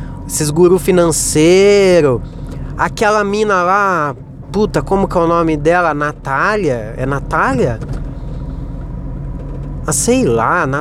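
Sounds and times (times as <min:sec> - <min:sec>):
moving car rumbling in the cabin: 0:00.0 - 0:10.8
speech: 0:00.3 - 0:08.0, 0:09.8 - 0:10.8
loose rattling from a car trunk: 0:02.2 - 0:10.2.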